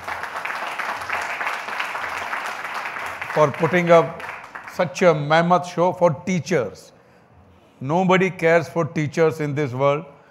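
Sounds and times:
crowd applause at an event honouring teachers: 0.0s - 4.8s
speech: 3.4s - 4.2s, 4.8s - 6.9s, 7.8s - 10.2s.

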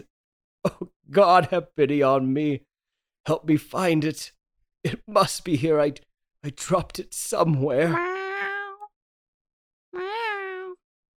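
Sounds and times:
speech: 0.0s - 8.1s
cat meowing: 7.9s - 8.9s, 10.0s - 10.8s.

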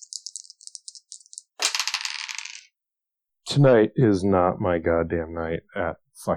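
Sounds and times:
dice rattling in a cupped hand: 0.0s - 2.7s
speech: 3.5s - 6.3s.

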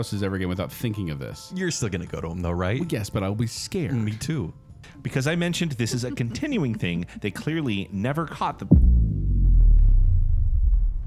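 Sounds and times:
speech: 0.0s - 9.1s
laughter: 5.2s - 7.8s
deep loud thunder rumbling from a storm: 8.8s - 11.0s.

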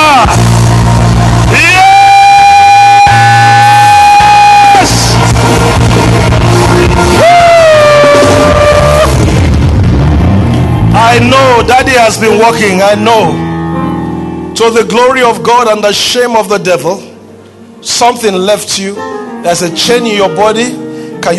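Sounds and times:
dense roaring crowd din: 0.0s - 12.7s
audience shouting hallelujah: 1.2s - 9.4s
speech: 12.1s - 13.5s, 14.6s - 17.1s, 17.8s - 21.3s.

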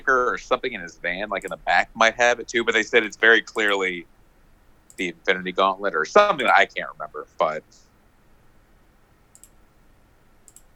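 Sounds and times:
speech: 0.0s - 4.1s, 5.0s - 7.8s
low steady hiss: 0.0s - 10.7s
computer mouse clicking: 9.3s - 9.6s, 10.4s - 10.7s.

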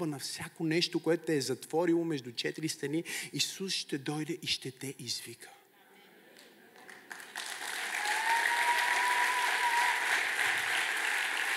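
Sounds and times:
speech: 0.0s - 5.6s
audience applause: 6.8s - 11.5s.

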